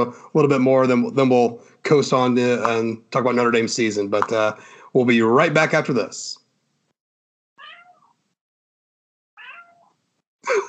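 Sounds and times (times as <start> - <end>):
speech: 0.0 - 6.4, 10.4 - 10.6
pet cat meowing: 7.6 - 8.2, 9.4 - 10.0.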